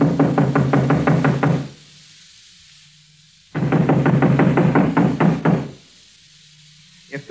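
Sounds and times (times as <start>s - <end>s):
rapid loud knocking on a door: 0.0s - 1.8s, 3.6s - 5.8s.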